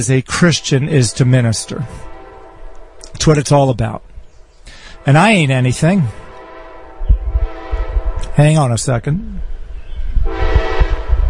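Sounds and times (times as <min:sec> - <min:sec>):
speech: 0:00.0 - 0:02.1, 0:03.2 - 0:04.1, 0:05.0 - 0:06.2, 0:08.4 - 0:09.5
New York train horn blaring: 0:00.0 - 0:04.1, 0:04.7 - 0:08.4, 0:10.2 - 0:11.2
heavy rumble of a passing train: 0:00.0 - 0:11.2.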